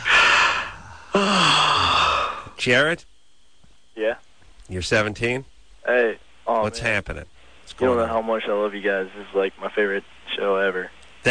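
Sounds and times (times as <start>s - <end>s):
breathy voiced sound: 0.0s - 2.6s
speech: 2.6s - 3.1s, 4.0s - 11.2s.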